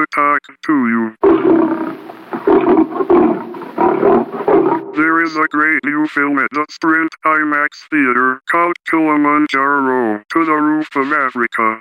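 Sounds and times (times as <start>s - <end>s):
speech: 0.0s - 1.3s, 5.2s - 11.7s
lion roaring: 1.2s - 5.0s.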